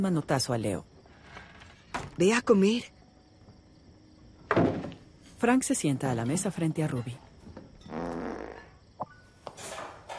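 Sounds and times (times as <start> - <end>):
speech: 0.0 - 0.9, 2.2 - 3.0, 5.4 - 7.2
drawn-out buzzy fart: 7.8 - 8.8.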